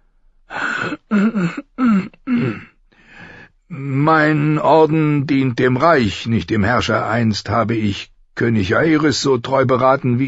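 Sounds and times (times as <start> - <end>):
drawn-out gravelly throat clearing: 0.5 - 2.9
speech: 0.8 - 2.7, 4.1 - 10.2.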